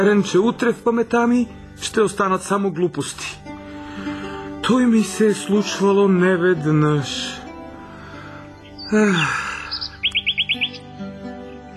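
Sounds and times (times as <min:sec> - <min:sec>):
speech: 0:00.0 - 0:03.5, 0:04.7 - 0:07.4, 0:08.9 - 0:09.5
small birds chirping while hopping from twig to twig: 0:07.8 - 0:11.7
loud swooping bird call: 0:08.6 - 0:10.9.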